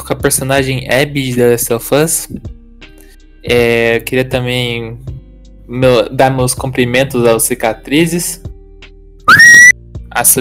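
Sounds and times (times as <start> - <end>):
speech: 0.1 - 2.6, 3.4 - 5.1, 5.7 - 8.5, 10.2 - 10.3
person whistling loudly to call everyone: 9.3 - 9.8.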